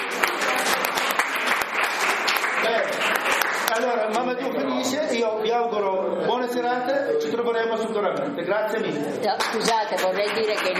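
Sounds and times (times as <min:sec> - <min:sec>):
audience applauding at a book presentation: 0:00.0 - 0:04.1, 0:09.3 - 0:10.7
speech: 0:03.8 - 0:10.7.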